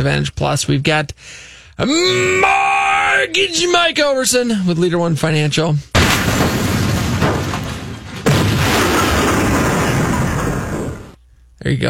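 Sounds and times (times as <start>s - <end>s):
speech: 0.0s - 5.9s, 11.6s - 11.8s
heavy boom: 6.0s - 11.2s
rumbling crash sound effect like a train wreck: 6.0s - 11.2s.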